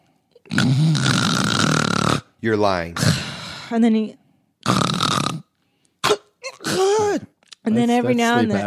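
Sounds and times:
person imitating a man's snoring: 0:00.5 - 0:02.3, 0:04.6 - 0:05.5
speech: 0:02.4 - 0:03.1, 0:03.7 - 0:04.8, 0:07.7 - 0:08.6.

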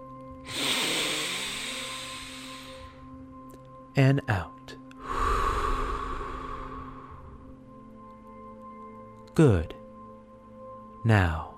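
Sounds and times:
deep breath in during a sleep meditation: 0:00.5 - 0:03.1, 0:05.0 - 0:07.7
speech: 0:04.0 - 0:04.8, 0:09.4 - 0:09.8, 0:11.0 - 0:11.5.

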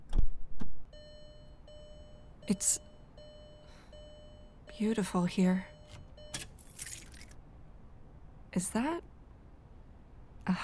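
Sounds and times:
speech: 0:02.5 - 0:02.9, 0:04.8 - 0:05.7, 0:08.6 - 0:09.1, 0:10.5 - 0:10.6
car keys jangling while hidden in a tire well: 0:05.8 - 0:07.4.

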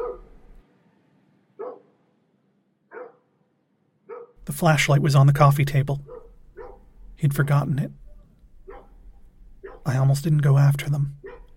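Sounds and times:
dog barking while running: 0:00.0 - 0:00.4, 0:01.6 - 0:01.9, 0:02.9 - 0:03.3, 0:04.0 - 0:04.4, 0:06.0 - 0:06.9, 0:08.6 - 0:09.0, 0:09.6 - 0:09.9, 0:11.2 - 0:11.5
speech: 0:04.5 - 0:06.1, 0:07.2 - 0:08.0, 0:09.8 - 0:11.2.

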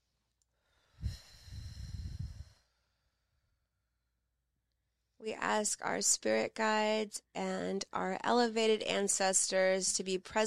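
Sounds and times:
deep breath in: 0:00.6 - 0:03.3
speech: 0:05.2 - 0:10.4.

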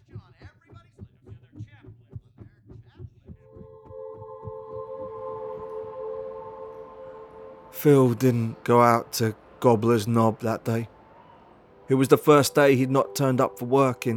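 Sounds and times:
heartbeat thumping: 0:00.0 - 0:04.8
sustained humming tone: 0:03.4 - 0:14.1
speech: 0:07.8 - 0:10.9, 0:11.9 - 0:14.1.

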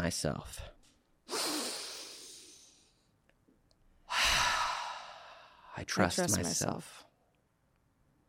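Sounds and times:
speech: 0:00.0 - 0:00.8, 0:05.8 - 0:07.1
deep breath in and exhale during a guided breathing exercise: 0:01.3 - 0:03.2, 0:04.0 - 0:05.8.

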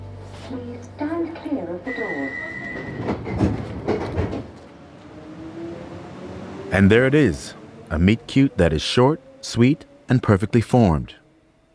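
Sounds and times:
speech: 0:00.5 - 0:02.4, 0:06.7 - 0:11.2
train rumbling along rails: 0:01.3 - 0:11.7
sharp clanks and thumps: 0:02.8 - 0:04.7
sustained whining tone: 0:04.8 - 0:11.7.

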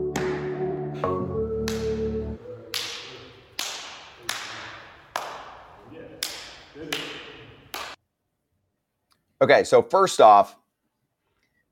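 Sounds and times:
sharp loud hand slaps with ringing decay: 0:00.1 - 0:00.6, 0:01.6 - 0:08.0
speech: 0:09.4 - 0:10.6.

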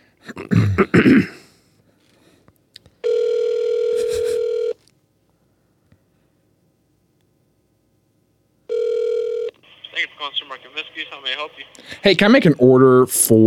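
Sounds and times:
person clearing throat with a cough: 0:00.2 - 0:01.6
phone line ringback tone while placing a call: 0:03.0 - 0:04.8, 0:08.7 - 0:09.6
speech: 0:11.5 - 0:13.4.

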